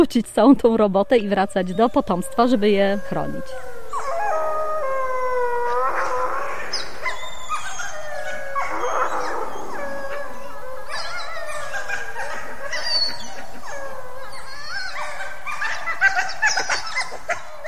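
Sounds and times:
speech: 0.0s - 3.7s
wolves howling, parents calling pup: 1.1s - 17.6s
short wolf yips: 5.6s - 17.6s.

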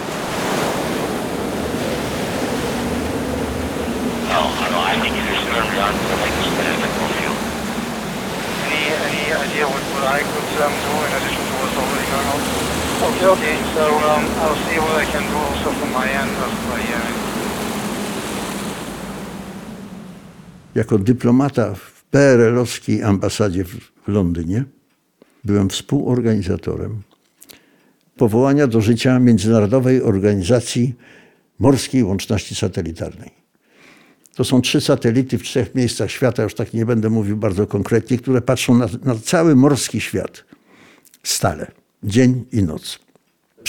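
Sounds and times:
storm wind roaring over crashing surf: 0.0s - 20.8s
waves surging and breaking: 0.0s - 20.8s
speech: 20.8s - 24.8s, 25.4s - 27.1s, 28.2s - 33.4s, 34.4s - 40.6s, 41.2s - 43.0s.

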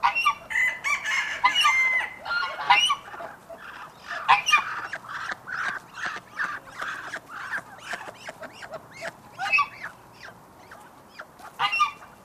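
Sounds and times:
bantam and green-legged hens clucking: 0.0s - 12.2s
geese honking in a farmyard: 0.0s - 12.2s
rooster crowing in a farmyard: 0.1s - 2.9s
ducks quacking in a farmyard: 1.4s - 12.2s.

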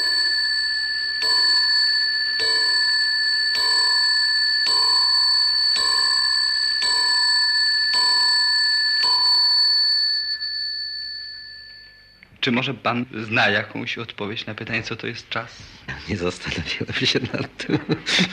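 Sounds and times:
bronze mantel clock bell striking: 0.0s - 12.2s
speech: 12.4s - 18.3s
laughter: 16.9s - 18.3s.

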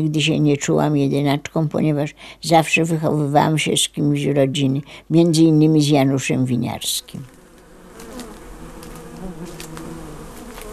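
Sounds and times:
speech: 0.0s - 7.4s
many bees buzzing around a blooming hundred-year-old linden tree: 6.8s - 10.7s
faint outdoor clicks: 7.3s - 10.7s.

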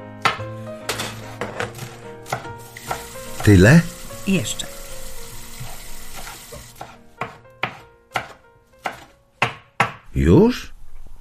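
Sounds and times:
knife chopping food for soup: 1.4s - 3.6s, 5.6s - 10.0s
speech: 3.4s - 4.7s, 10.2s - 10.7s.

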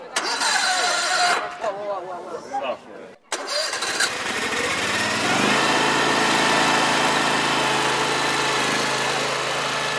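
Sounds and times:
remote-controlled eight-wheel articulated transport vehicle engine starting and running: 0.1s - 1.4s, 3.3s - 9.9s.

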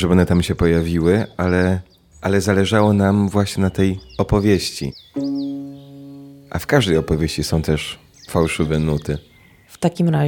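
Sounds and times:
speech: 0.0s - 5.7s, 6.5s - 10.2s
small birds chirping: 0.0s - 10.2s
sustained musical tone: 5.2s - 7.6s.

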